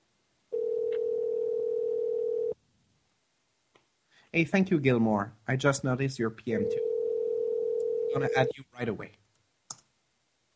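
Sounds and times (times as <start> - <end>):
faint hiss: 0.0 - 10.5
telephone ringback tone while placing a call: 0.5 - 2.6, 6.6 - 8.5
speech: 4.3 - 6.9, 8.1 - 9.2.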